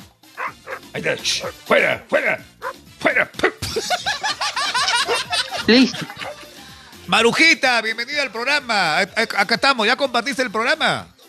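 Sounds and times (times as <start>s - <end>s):
dog barking: 0.4s - 1.6s, 2.6s - 2.8s, 6.0s - 6.5s
speech: 0.9s - 4.5s, 5.6s - 6.2s, 7.1s - 11.1s
laughter: 3.6s - 6.6s.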